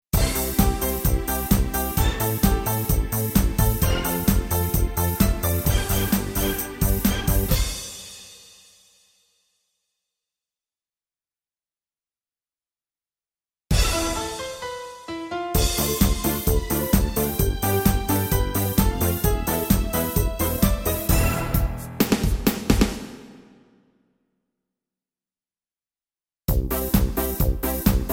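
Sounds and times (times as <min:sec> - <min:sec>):
disco music: 0:00.2 - 0:07.8, 0:13.7 - 0:23.1, 0:26.5 - 0:28.1.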